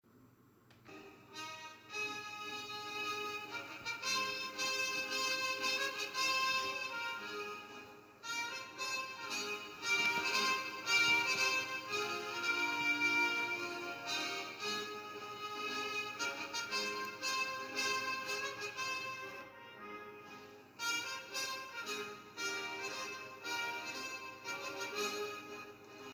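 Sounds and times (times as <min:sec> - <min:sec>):
instrumental anthem: 0:00.8 - 0:26.1.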